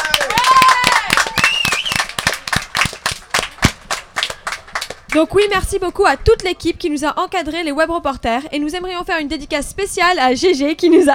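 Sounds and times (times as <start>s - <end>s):
cheers: 0.0s - 2.9s
crowd applause: 0.0s - 5.1s
whistles: 1.4s - 2.1s
speech: 5.2s - 11.1s.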